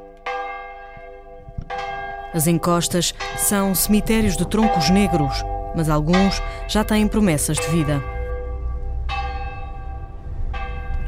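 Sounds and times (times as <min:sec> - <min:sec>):
parish church bell tolling: 0:00.0 - 0:11.0
speech: 0:02.3 - 0:08.1.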